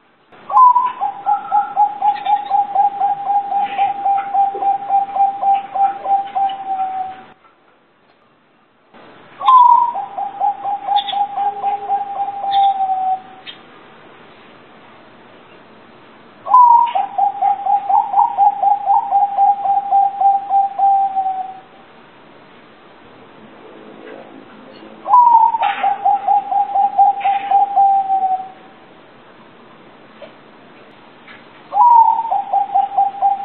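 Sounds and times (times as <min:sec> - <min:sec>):
local zebra dove cooing: 0:00.5 - 0:07.4, 0:09.4 - 0:13.6, 0:16.5 - 0:21.7, 0:25.0 - 0:28.7, 0:31.7 - 0:33.4.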